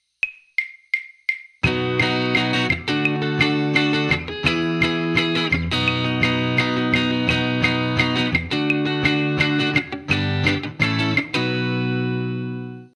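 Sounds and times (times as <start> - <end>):
practice chord: 1.6 - 12.9.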